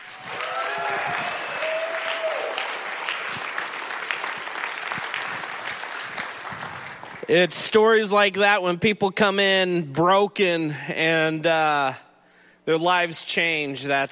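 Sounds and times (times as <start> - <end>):
cheers from a crowd: 0.0 - 7.1
crowd clapping for a speaker: 0.0 - 7.3
speech: 7.3 - 12.0, 12.7 - 14.0.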